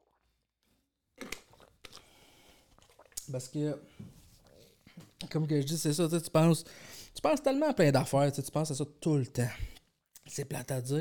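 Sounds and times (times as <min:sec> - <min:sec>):
faint swallow: 0:01.2 - 0:03.3
small sip of a drink: 0:01.2 - 0:03.4
speech: 0:03.3 - 0:04.2, 0:05.3 - 0:09.7, 0:10.3 - 0:10.9.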